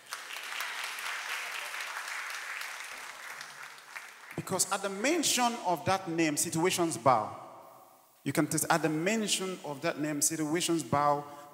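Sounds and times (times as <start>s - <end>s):
crowd clapping: 0.0s - 4.7s
speech: 4.4s - 7.4s, 8.2s - 11.5s.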